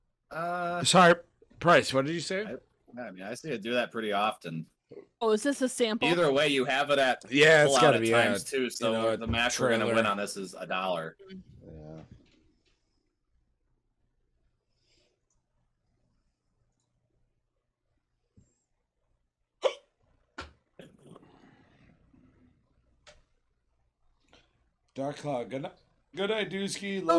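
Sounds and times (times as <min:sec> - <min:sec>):
speech: 0:00.3 - 0:11.5, 0:25.0 - 0:27.1
person hiccuping in a quiet room: 0:19.6 - 0:19.9.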